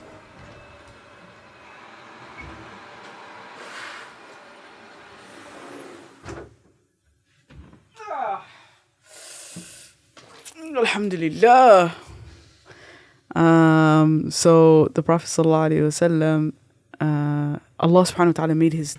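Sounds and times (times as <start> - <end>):
garbage truck heavy engine droning with mechanical whine heard through a window: 0.0 - 6.7
garbage truck air hissing bursts: 3.4 - 6.2
speech: 10.7 - 12.0, 13.4 - 17.2, 17.8 - 18.9.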